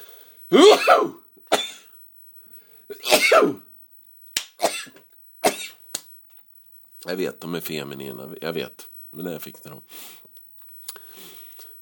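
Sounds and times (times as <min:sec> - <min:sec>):
person sneezing: 0:00.5 - 0:01.9, 0:02.9 - 0:03.6
speech: 0:03.4 - 0:03.6, 0:07.1 - 0:10.3.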